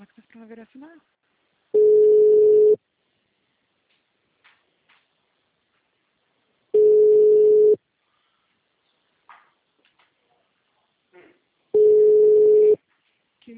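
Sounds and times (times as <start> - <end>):
speech: 0.4 - 1.2
telephone ringback tone while placing a call: 1.8 - 2.8, 6.8 - 7.8, 11.8 - 12.8.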